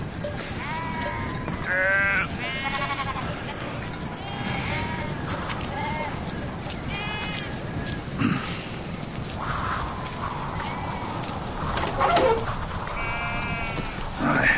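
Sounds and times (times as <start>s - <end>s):
steady rumble of noise: 0.0s - 14.5s
several lambs bleating: 0.4s - 6.2s, 6.9s - 7.5s, 13.0s - 14.0s.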